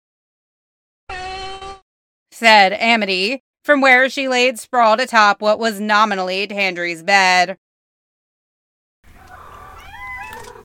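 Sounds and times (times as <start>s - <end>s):
speech: 2.4s - 7.6s
group of cats meowing in chorus: 9.2s - 10.6s.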